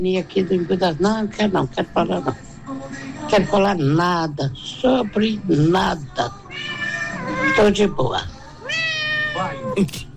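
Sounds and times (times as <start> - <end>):
speech: 0.0 - 2.5, 3.3 - 6.4, 7.4 - 8.3, 9.4 - 10.1
cat meowing: 6.5 - 7.9, 8.6 - 9.8.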